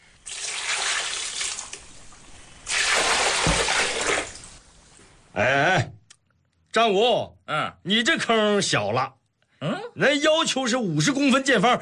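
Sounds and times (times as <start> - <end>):
water gushing over a newly planted sapling: 0.0 - 4.9
speech: 5.4 - 5.9, 6.8 - 11.7.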